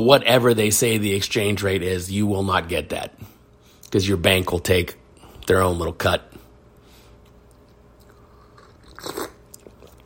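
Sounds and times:
speech: 0.0 - 3.3, 3.9 - 6.4, 9.0 - 9.2
person slurping a sip of hot coffee: 8.4 - 10.0.

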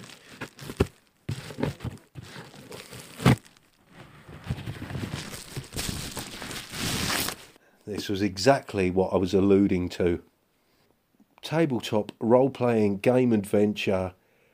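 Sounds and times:
paper envelope crinkling and rustling while being handled and opened: 0.0 - 7.6
speech: 7.9 - 10.3, 11.5 - 14.2.

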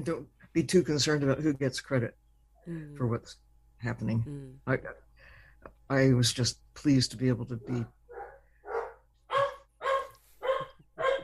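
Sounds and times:
speech: 0.0 - 5.0, 5.9 - 8.0
Chesapeake Bay Retriever, chocolate brown retriever and rescue dogs barking: 7.6 - 11.2.

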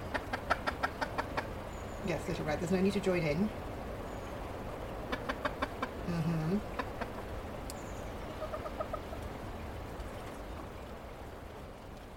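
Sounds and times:
chicken clucking: 0.0 - 1.5, 5.0 - 6.0, 6.6 - 7.3, 8.3 - 9.3
steady hiss: 0.0 - 12.1
speech: 2.0 - 3.7, 6.1 - 6.7.

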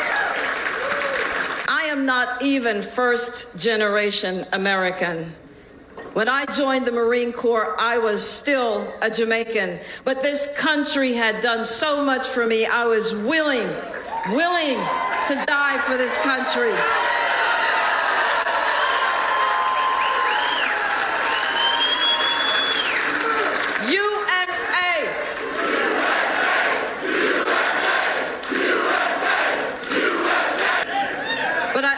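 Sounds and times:
crowd cheering at a rally: 0.0 - 1.7, 14.0 - 31.8
speech: 2.0 - 5.4, 6.2 - 17.1
crowd chanting at a rally: 25.4 - 31.1.

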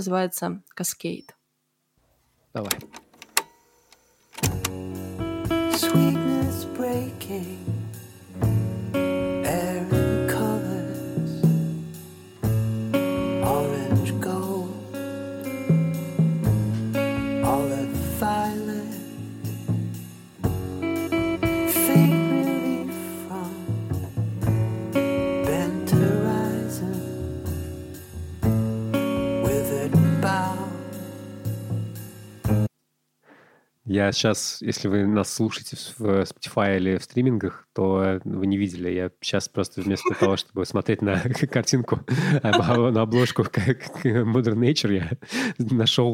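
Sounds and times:
speech: 0.0 - 1.4, 2.6 - 3.0, 5.9 - 7.8, 33.9 - 46.1
jazz-folk instrumental music: 4.4 - 32.7
laughter: 39.8 - 40.4, 41.0 - 45.2.

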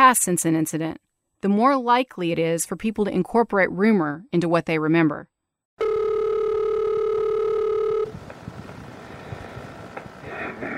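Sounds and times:
speech: 0.1 - 6.0
electronic telephone ring tone on a recorded phone call: 5.8 - 8.2.

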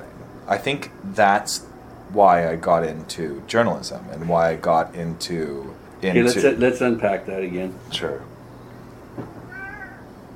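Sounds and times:
steady low hum: 0.0 - 10.3
speech: 0.5 - 8.3
soft knock: 9.1 - 9.5
cat meowing: 9.4 - 10.1.

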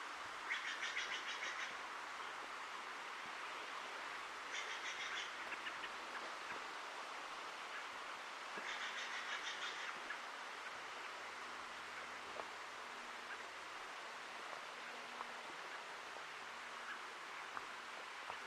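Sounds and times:
steady dense hiss of traffic: 0.0 - 18.4.

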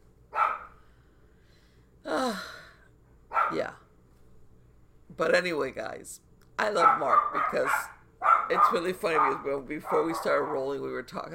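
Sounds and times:
dog barking: 0.3 - 0.8, 3.3 - 3.7, 6.8 - 10.8
speech: 5.2 - 7.9, 8.5 - 11.3.

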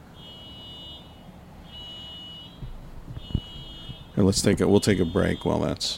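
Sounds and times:
car alarm: 0.0 - 5.9
low rumble: 2.6 - 4.8
speech: 4.2 - 5.9.

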